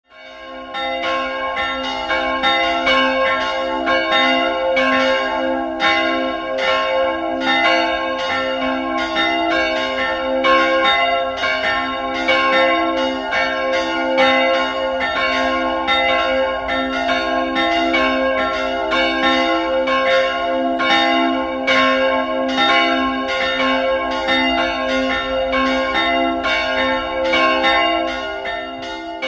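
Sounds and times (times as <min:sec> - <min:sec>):
bells ringing in Pfraundorf: 0:00.1 - 0:29.2.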